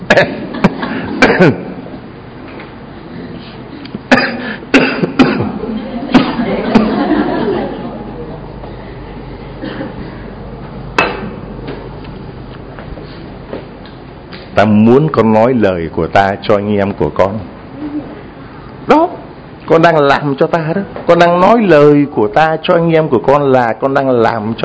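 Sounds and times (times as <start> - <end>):
repeated harsh coughing fits: 0.0 - 1.8, 4.1 - 7.0, 9.6 - 10.2
speech: 0.1 - 0.4, 1.2 - 1.7, 14.6 - 17.5, 19.7 - 24.6
laughter: 0.4 - 1.6, 5.4 - 8.8.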